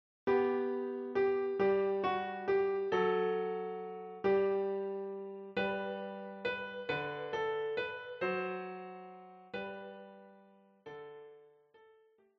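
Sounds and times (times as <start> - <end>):
piano: 0.3 - 12.3.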